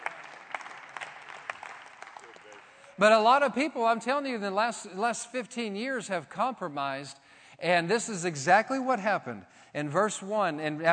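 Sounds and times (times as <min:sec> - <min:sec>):
church congregation applauding at a Wednesday night service: 0:00.0 - 0:03.2
speech: 0:03.0 - 0:10.9.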